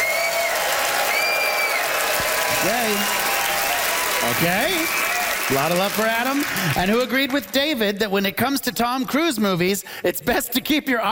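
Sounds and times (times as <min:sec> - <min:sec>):
whistles: 0:00.0 - 0:01.9
cheers: 0:00.0 - 0:07.0
large audience applauding loudly: 0:00.0 - 0:08.0
speech: 0:02.6 - 0:03.2, 0:04.2 - 0:11.1.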